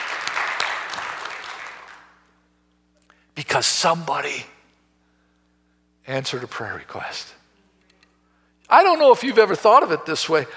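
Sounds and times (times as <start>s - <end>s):
applause from a large group: 0.0s - 2.2s
speech: 3.4s - 4.6s, 6.1s - 7.4s, 8.7s - 10.5s.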